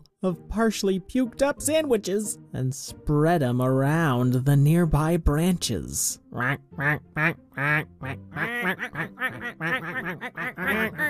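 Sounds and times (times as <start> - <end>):
speech: 0.2 - 11.0
flock of ducks quacking in a tree: 6.4 - 11.0.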